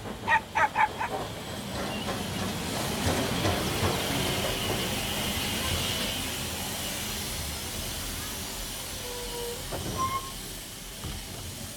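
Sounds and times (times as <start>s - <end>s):
steam train chuffing into a station platform: 0.0s - 11.7s
metallic squeal of a steam train: 9.0s - 10.4s.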